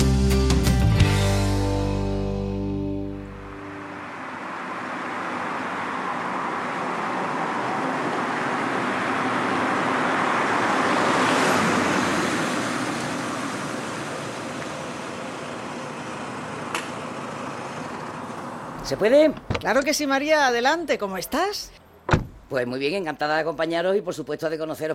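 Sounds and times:
road traffic roar of passing vehicles: 0.9 - 22.5
car engine humming: 1.1 - 20.0, 21.6 - 22.5
speech: 18.9 - 21.8, 22.5 - 24.9.

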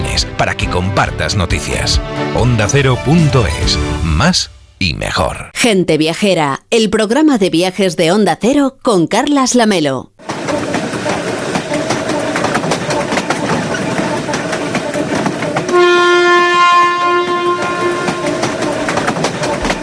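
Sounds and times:
speech: 0.2 - 10.3
train with historic carriages rumbling and clattering along the track: 10.2 - 19.8
long loud multi-toned train horn blast: 13.4 - 19.8.

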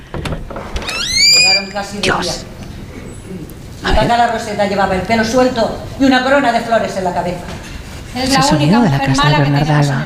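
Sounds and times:
door creaking open on its hinge: 0.6 - 2.0
speech: 1.4 - 2.5, 3.8 - 10.0.

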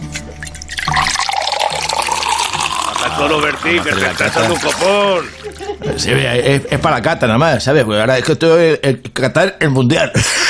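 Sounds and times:
wine pouring from a freshly opened bottle: 0.0 - 6.0
speech: 3.2 - 10.4
laughter: 3.8 - 7.0.

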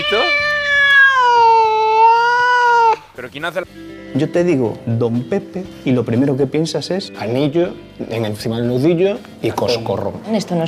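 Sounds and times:
cat meowing: 0.0 - 3.1
speech: 0.1 - 0.4, 3.4 - 10.6.

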